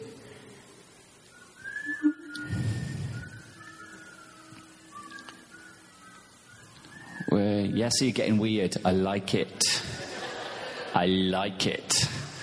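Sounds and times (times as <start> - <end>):
person whistling soft drawn-out notes: 1.3 - 7.4
speech: 7.6 - 10.0, 10.9 - 12.4
laughter: 9.6 - 11.2.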